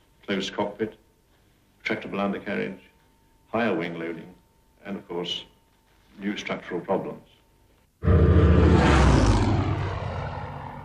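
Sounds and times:
speech: 0:00.3 - 0:01.0, 0:01.9 - 0:02.9, 0:03.5 - 0:05.5, 0:06.2 - 0:07.3
Hawker Hurricane fighter Merlin V12 liquid-cooled supercharged piston engine roaring: 0:08.0 - 0:10.8.

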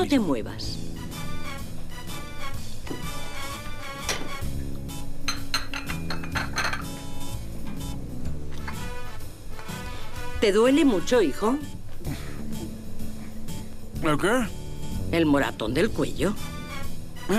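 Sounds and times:
speech: 0:00.0 - 0:00.8, 0:10.4 - 0:11.8, 0:14.0 - 0:16.5
steady tonal background: 0:00.6 - 0:17.3
plate and cutlery clinking: 0:05.3 - 0:07.2.

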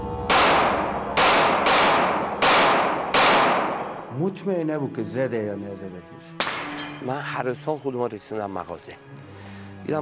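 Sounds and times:
gunshots: 0:00.3 - 0:04.0
speech: 0:04.2 - 0:09.2, 0:09.8 - 0:10.0.

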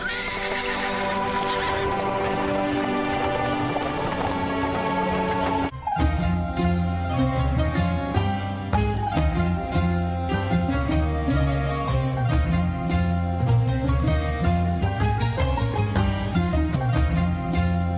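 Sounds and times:
horse whinny: 0:00.0 - 0:02.4
dense sustained musical backdrop: 0:00.0 - 0:17.9
horse hooves clip-clopping at a walking pace: 0:00.8 - 0:06.2.

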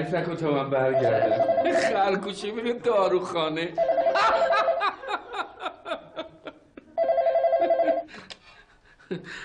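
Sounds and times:
speech: 0:00.0 - 0:04.7, 0:09.1 - 0:09.4
telephone ringing in long trilling bursts: 0:00.8 - 0:02.2, 0:03.8 - 0:05.1, 0:07.0 - 0:08.1
people chuckling and laughing: 0:04.0 - 0:09.4.

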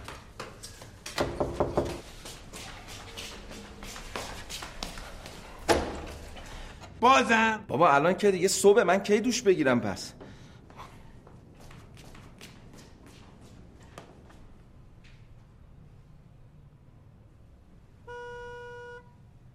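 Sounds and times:
speech: 0:07.0 - 0:10.2
car horn honking from a driver waiting outside: 0:18.0 - 0:19.3.

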